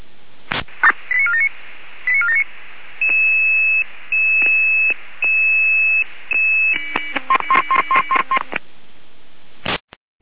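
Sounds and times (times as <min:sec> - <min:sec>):
brief click of radio static: 0:00.5 - 0:01.2, 0:03.0 - 0:03.3, 0:04.4 - 0:05.0, 0:06.3 - 0:08.7
radio dispatch alerting tones from the Jena control centre: 0:02.1 - 0:08.6.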